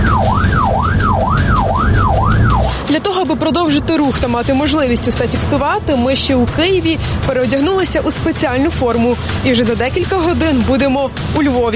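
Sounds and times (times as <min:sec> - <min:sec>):
ambulance siren wailing as the vehicle sets off: 0:00.0 - 0:03.1
ambulance low engine rumble: 0:00.0 - 0:11.7
speech: 0:03.7 - 0:11.7.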